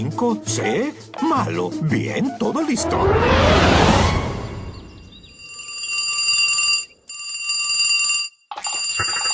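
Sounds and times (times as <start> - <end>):
speech: 0.0 - 4.2
noisy burst: 2.8 - 5.0
telephone ringing in electronic bursts: 5.2 - 9.3.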